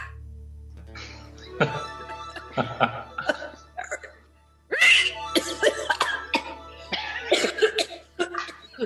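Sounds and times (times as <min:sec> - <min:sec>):
laughter: 0:01.4 - 0:04.1, 0:04.7 - 0:08.8
raspy smoker's cough: 0:03.2 - 0:04.1, 0:04.9 - 0:08.8.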